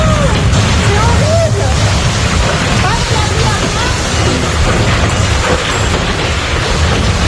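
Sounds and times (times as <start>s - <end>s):
faint voices: 0.0s - 6.1s
tornado winds roaring near Carcassonne in southern France: 0.0s - 7.2s.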